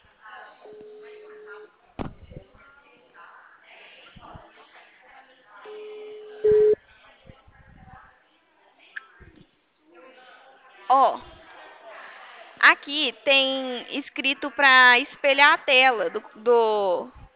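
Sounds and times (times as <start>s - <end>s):
outgoing video call ringing tone: 5.6s - 6.8s
speech: 12.9s - 17.2s.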